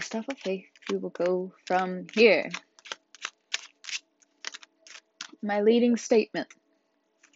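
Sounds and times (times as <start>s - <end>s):
deck of tarot cards being shuffled: 0.0s - 5.4s, 7.2s - 7.3s
speech: 0.1s - 2.7s, 5.4s - 6.6s.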